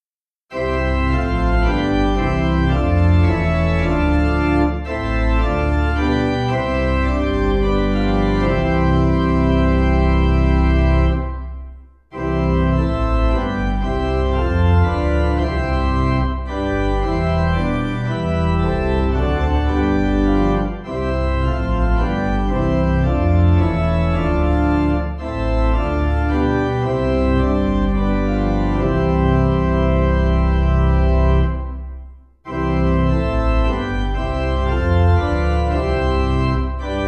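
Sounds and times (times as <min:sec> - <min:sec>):
organ playing a hymn: 0:00.5 - 0:37.0.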